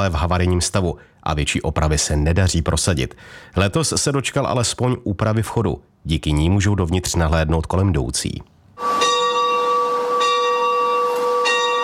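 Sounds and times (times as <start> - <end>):
speech: 0.0 - 9.0
bell of the Church of St. James the Elder in Hůrky ringing: 8.8 - 11.8.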